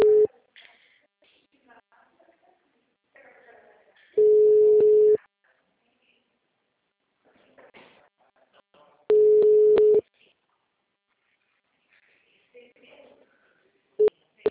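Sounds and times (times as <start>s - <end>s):
mobile phone call tone beeps: 0.0s - 0.3s, 4.2s - 5.2s, 9.1s - 10.0s
faint sounds: 0.0s - 14.5s.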